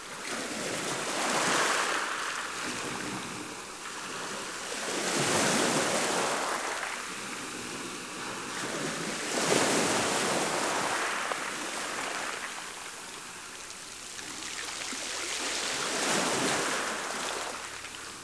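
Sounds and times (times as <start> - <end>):
waves: 0.0 - 18.2.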